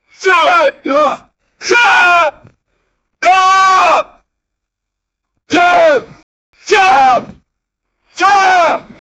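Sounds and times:
man screaming: 0:00.2 - 0:02.4, 0:03.2 - 0:04.2, 0:05.5 - 0:07.4, 0:08.2 - 0:09.0.

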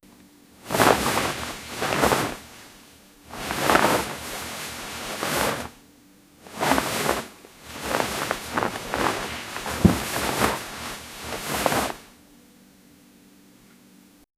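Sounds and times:
bedsheets rustling in a bedroom: 0:00.6 - 0:05.8, 0:06.4 - 0:12.1.

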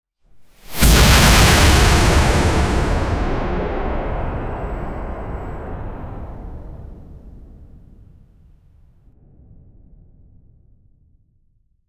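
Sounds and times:
powerful fantasy magical energy sound: 0:00.6 - 0:07.9.

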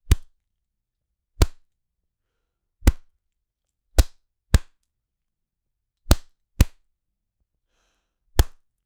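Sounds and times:
human punch in a fight: 0:00.0 - 0:00.3, 0:01.4 - 0:01.7, 0:02.8 - 0:03.1, 0:04.0 - 0:04.8, 0:06.1 - 0:06.8, 0:08.4 - 0:08.6.

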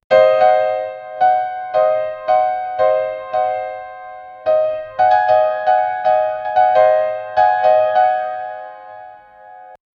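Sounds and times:
gothic atmosphere piano music: 0:00.1 - 0:09.8.

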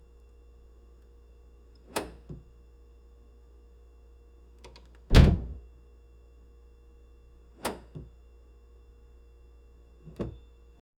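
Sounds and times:
double door refrigerator: 0:04.6 - 0:05.8, 0:07.3 - 0:08.2, 0:09.9 - 0:10.6.

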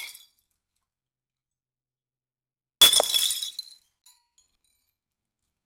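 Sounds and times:
vase breaking in an accident: 0:02.8 - 0:03.5.

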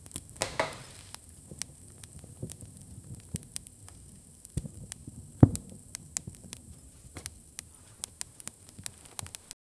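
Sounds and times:
soft crackling indoors: 0:00.0 - 0:09.6.

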